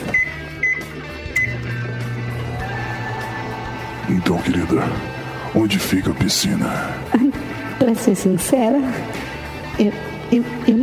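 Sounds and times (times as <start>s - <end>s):
bright microwave keypad beeps: 0.0s - 1.6s
microwave oven humming: 0.0s - 4.2s
speech: 4.1s - 10.8s.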